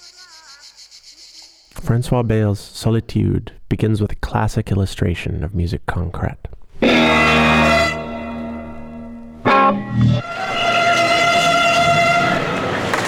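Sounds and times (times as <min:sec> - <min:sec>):
speech: 0:01.8 - 0:07.0
two police sirens layered into a chord in a musique concrète piece: 0:06.8 - 0:13.0.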